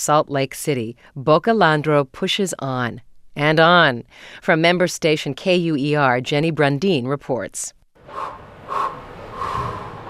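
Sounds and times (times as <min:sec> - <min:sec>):
speech: 0:00.0 - 0:08.4
athlete breathing deeply at the start line of an ice track: 0:08.0 - 0:10.0.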